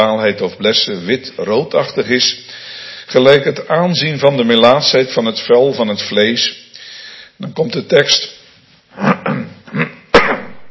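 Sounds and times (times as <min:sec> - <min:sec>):
speech: 0:00.0 - 0:06.6, 0:07.4 - 0:08.4, 0:09.0 - 0:09.4
throaty coughs: 0:09.0 - 0:10.1.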